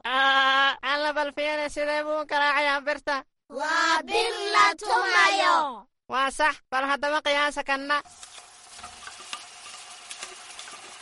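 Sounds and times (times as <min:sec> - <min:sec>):
speech: 0:01.1 - 0:08.3
something sweet frying in a pan: 0:08.0 - 0:10.9.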